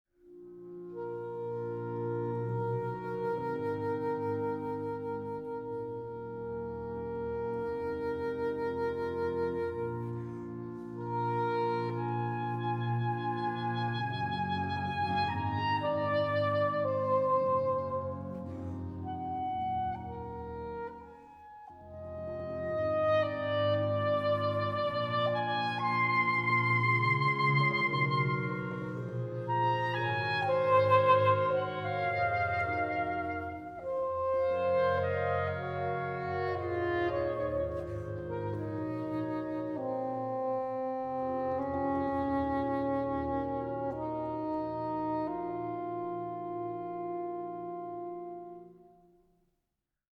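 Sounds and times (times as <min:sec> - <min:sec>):
soprano saxophone concerto: 0:00.2 - 0:49.2.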